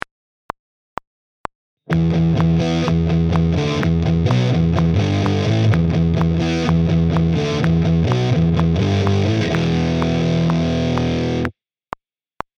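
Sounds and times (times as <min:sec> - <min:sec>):
metal rhythm guitar: 0:01.9 - 0:11.5.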